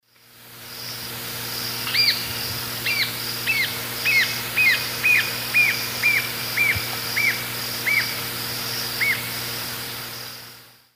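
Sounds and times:
Galbula dea song in South America Eastern Lowlands: 0:01.9 - 0:08.1.

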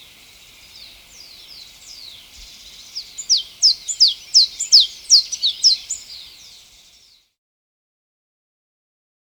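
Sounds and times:
blue-and-yellow tanager calling in Ecuador: 0:00.0 - 0:06.9.

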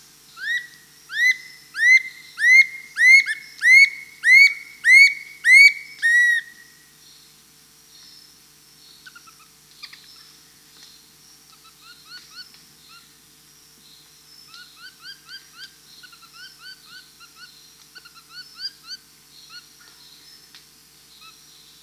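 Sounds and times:
dull-capped attila calling in Peru: 0:00.4 - 0:06.7.

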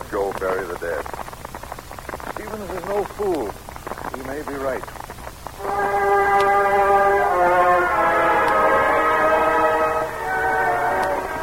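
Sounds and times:
faint rumbling and clicks of train: 0:00.0 - 0:11.4
speech: 0:00.1 - 0:01.2, 0:02.6 - 0:03.6, 0:04.2 - 0:05.0
train horn blaring multi-tone chord: 0:05.6 - 0:11.4.

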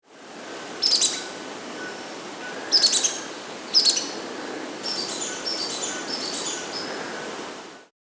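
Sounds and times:
Fawn-breasted brilliant Heliodoxa rubinoides calling in the Andes: 0:00.4 - 0:07.4.

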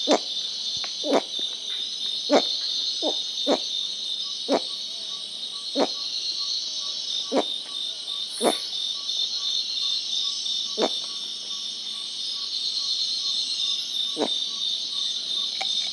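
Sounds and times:
Bolivian bamboo rat calling in the rainforest: 0:00.0 - 0:00.3, 0:01.0 - 0:01.3, 0:02.3 - 0:03.7, 0:05.7 - 0:06.1, 0:07.2 - 0:07.6, 0:08.4 - 0:08.7, 0:10.7 - 0:11.2, 0:14.1 - 0:14.4
steady high-pitched insect chorus: 0:00.0 - 0:15.9.

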